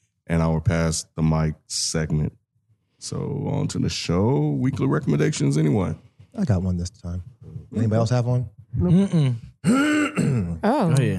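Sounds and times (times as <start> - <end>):
speech: 0.3 - 2.4, 3.0 - 11.1
person clearing throat in voiced rasping pushes: 8.8 - 10.6.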